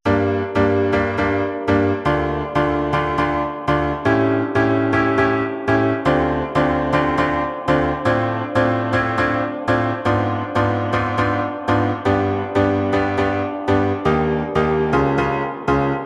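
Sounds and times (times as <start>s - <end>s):
piano chords: 0.0s - 16.0s.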